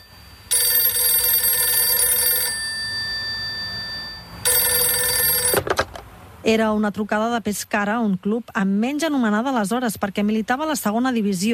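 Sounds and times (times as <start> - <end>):
telephone ringing with bright harmonic bell tone: 0.0 - 5.9
speech: 6.4 - 11.5.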